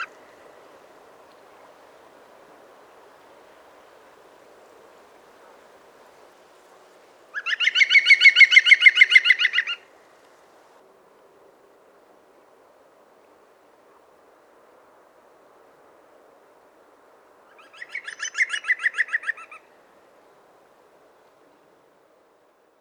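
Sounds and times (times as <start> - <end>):
green woodpecker: 7.3 - 9.9, 17.5 - 19.7.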